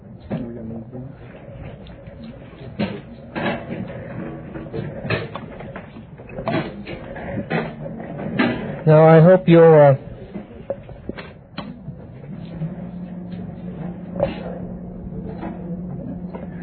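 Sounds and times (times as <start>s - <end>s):
chairs scraping and bumping across a hard floor: 1.2s - 9.3s, 12.1s - 16.6s
speech: 8.9s - 10.0s.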